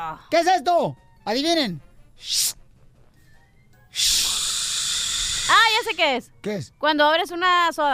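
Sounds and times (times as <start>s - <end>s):
speech: 0.0s - 2.6s, 4.0s - 4.2s, 5.5s - 7.9s
voice imitating a lady shushing in a library: 2.2s - 2.6s, 4.0s - 6.0s
voice imitating a snake hissing: 2.2s - 2.6s, 3.9s - 6.1s.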